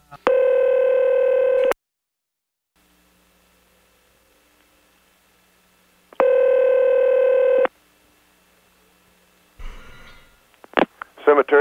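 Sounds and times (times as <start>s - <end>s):
telephone dial tone: 0.3s - 1.8s, 6.2s - 7.7s.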